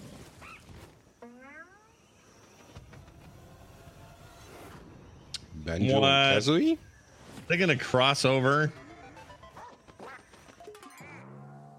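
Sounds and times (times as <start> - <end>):
speech: 5.7 - 6.9, 7.5 - 8.8
squawky electronic duck quacks from a video game: 8.8 - 11.7.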